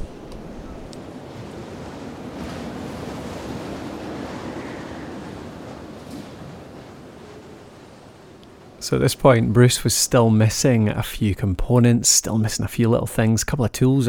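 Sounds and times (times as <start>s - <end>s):
wind blowing over a tent lying in a heap: 0.0s - 8.8s
speech: 8.8s - 14.0s.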